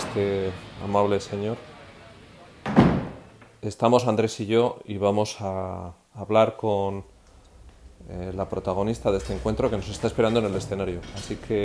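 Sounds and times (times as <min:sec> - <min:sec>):
heavy theatre loading door swinging shut: 0:00.0 - 0:03.6, 0:07.1 - 0:11.6
speech: 0:00.2 - 0:01.7, 0:03.6 - 0:07.1, 0:08.0 - 0:11.6.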